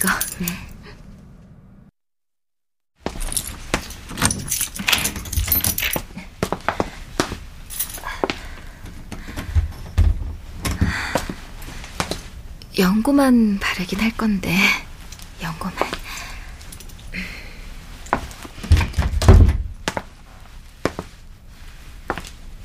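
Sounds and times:
speech: 0:00.0 - 0:00.7, 0:13.0 - 0:14.8, 0:15.6 - 0:15.8
low faint hum: 0:03.0 - 0:22.6
spare keys to a school nurse's office jangling: 0:03.1 - 0:06.0.

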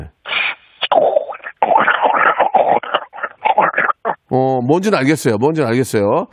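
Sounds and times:
person imitating a clogged sink drain gurgling: 0:00.0 - 0:04.4
speech: 0:04.3 - 0:06.3.

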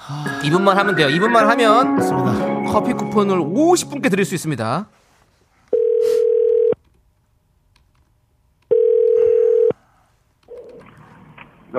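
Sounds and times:
speech: 0:00.1 - 0:05.0
telephone ringback tones of an outgoing call: 0:05.8 - 0:06.8, 0:08.7 - 0:09.8.

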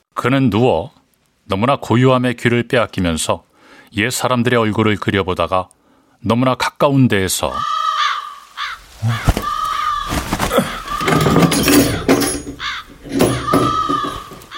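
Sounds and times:
speech: 0:00.2 - 0:07.8, 0:09.0 - 0:09.5
crow cawing: 0:07.5 - 0:14.5
rustling noises: 0:08.3 - 0:14.5
dull knocks: 0:09.2 - 0:14.5.

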